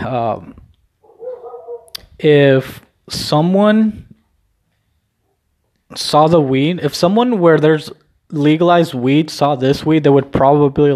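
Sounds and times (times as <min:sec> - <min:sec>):
speech: 0:00.1 - 0:00.6, 0:02.2 - 0:04.1, 0:05.9 - 0:10.9
female dog whimpering in a high whine: 0:01.0 - 0:02.0.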